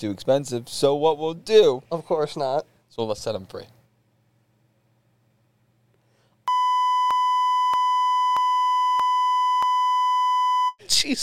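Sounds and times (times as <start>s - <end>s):
speech: 0.0s - 3.8s, 11.0s - 11.2s
censor bleep tone: 6.5s - 10.8s.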